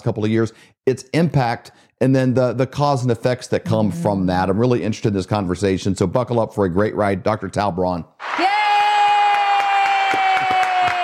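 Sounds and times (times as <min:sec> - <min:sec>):
speech: 0:00.0 - 0:08.6
loud crowd cheering and whooping to welcome a guest: 0:08.2 - 0:11.0
hands clapping in applause: 0:09.1 - 0:11.0.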